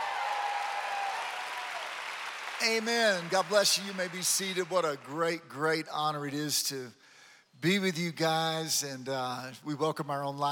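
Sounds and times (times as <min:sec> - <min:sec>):
congregation clapping during a church service: 0:00.0 - 0:05.4
speech: 0:02.6 - 0:07.0, 0:07.6 - 0:10.4.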